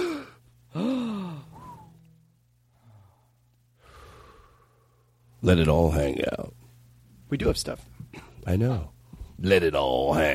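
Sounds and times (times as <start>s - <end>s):
nervous person taking a deep breath with a loud voiced gasp: 0.0s - 2.0s, 2.7s - 5.0s
soft sighing breaths and faint breathing: 0.0s - 5.3s
speech: 5.4s - 6.6s, 7.3s - 10.3s.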